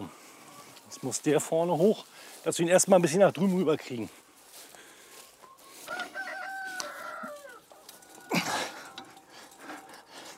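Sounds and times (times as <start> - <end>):
chickens clucking in a mobile chicken coop: 0.0 - 10.3
speech: 1.0 - 4.2
rustling: 1.8 - 10.3
rooster-like call in a mobile chicken coop: 5.6 - 9.1
sharp chicken squawk: 5.8 - 7.7.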